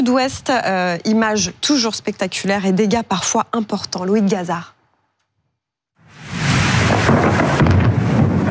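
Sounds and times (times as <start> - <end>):
speech: 0.0 - 4.8
heavy rain: 6.1 - 8.4
thunder rumbling during a violent storm: 6.1 - 8.4.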